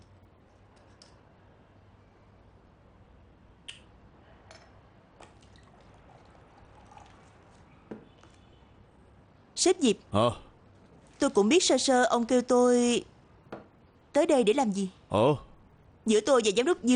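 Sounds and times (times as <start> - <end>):
water pouring into a glass: 5.2 - 7.7
speech: 9.6 - 10.4, 11.2 - 13.1, 14.2 - 16.9.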